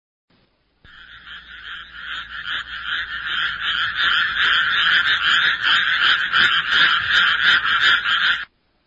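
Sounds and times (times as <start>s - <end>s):
dense chorus of frogs croaking: 0.9s - 8.5s.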